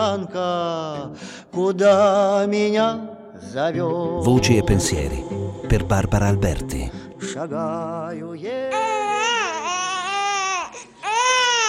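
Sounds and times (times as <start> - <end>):
speech: 0.0 - 9.4
newborn baby girl crying: 8.6 - 11.6.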